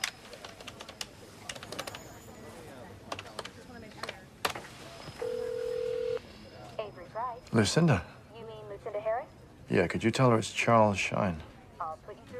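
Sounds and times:
steady phone tone: 5.2 - 6.2
speech: 7.5 - 8.1, 9.7 - 11.5.

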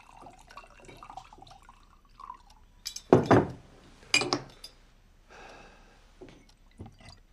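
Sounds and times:
brandy poured into a glass: 0.0 - 2.7
glass clinks: 2.8 - 3.6.

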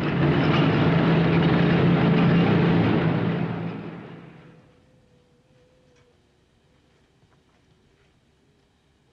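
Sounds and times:
convoy of military vehicles with a half-track rumbling through the desert: 0.0 - 4.7.

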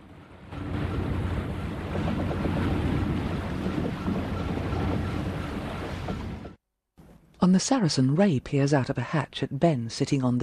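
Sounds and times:
constant rush of waves from a boat moving through gentle water: 0.0 - 6.6
wind noise: 0.0 - 6.6
speech: 7.4 - 10.4.

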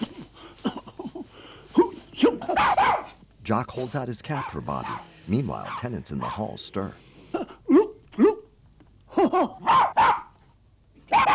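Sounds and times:
dog barking: 1.8 - 3.2, 9.6 - 10.3, 11.1 - 11.3
speech: 3.5 - 7.5, 9.3 - 10.0.

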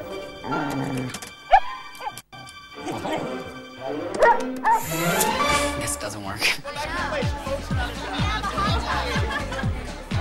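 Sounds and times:
many dogs all over a town barking and yelping: 0.1 - 3.5, 4.1 - 5.4
speech: 0.5 - 1.3, 3.9 - 9.8
laughter: 6.4 - 10.2.

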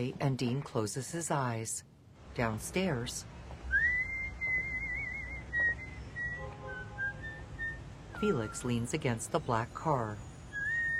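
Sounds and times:
speech: 0.0 - 3.4, 8.2 - 10.3
person whistling along to a tune: 3.7 - 8.8, 10.5 - 10.9.

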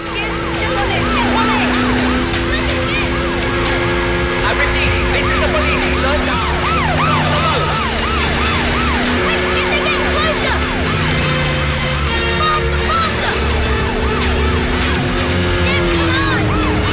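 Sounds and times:
boat engine roaring while speeding along a canal: 0.0 - 16.9
police boat siren wailing in rising and falling sweeps: 0.0 - 16.9.

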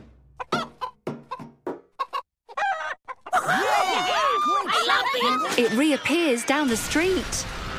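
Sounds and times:
chicken clucking and squawking: 0.4 - 3.5
laughter: 3.2 - 6.3
speech: 5.6 - 7.6.

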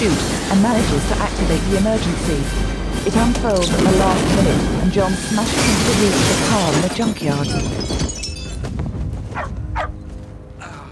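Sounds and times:
speech: 0.0 - 8.0
dog barking: 9.4 - 10.0.

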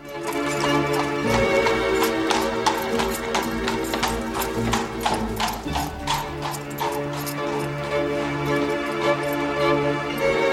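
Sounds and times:
hooves of a horse-drawn cab clip-clopping through city streets: 0.0 - 10.5
sustained music: 0.0 - 10.5.

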